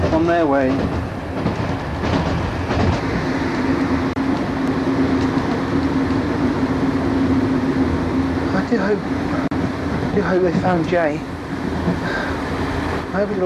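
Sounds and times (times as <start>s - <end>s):
soft rattles and clunks from train wheels: 0.0s - 6.4s, 9.3s - 13.4s
rumble inside a moving train carriage: 0.0s - 13.4s
speech: 0.1s - 1.5s, 8.7s - 9.5s, 10.1s - 12.3s, 13.1s - 13.4s.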